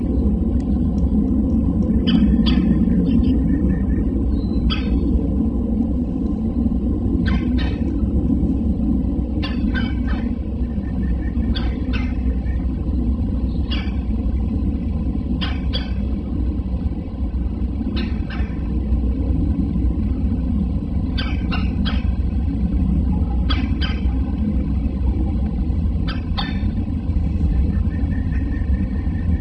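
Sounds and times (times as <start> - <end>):
altitude ambience: 0.0 - 29.3.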